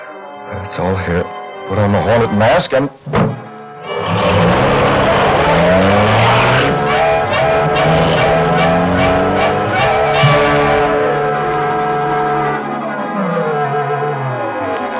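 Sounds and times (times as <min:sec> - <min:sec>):
speech: 0:00.5 - 0:03.4
powerful engine of a streamlined high-powered car revving and accelerating away: 0:03.0 - 0:14.9
car tires squealing: 0:03.8 - 0:14.9.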